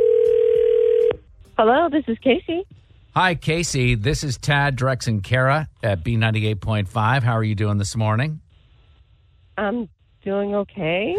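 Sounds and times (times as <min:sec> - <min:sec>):
telephone line ringing tone: 0:00.0 - 0:01.2
speech: 0:01.6 - 0:08.4, 0:09.6 - 0:11.1.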